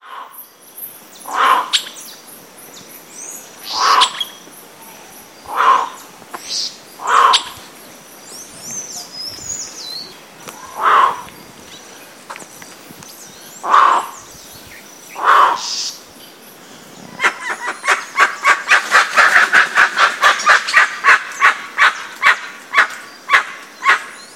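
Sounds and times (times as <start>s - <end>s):
Penelope obscura calling: 1.2s - 2.1s, 3.4s - 7.8s, 8.8s - 11.4s, 13.6s - 14.3s, 15.1s - 16.1s, 17.1s - 24.2s.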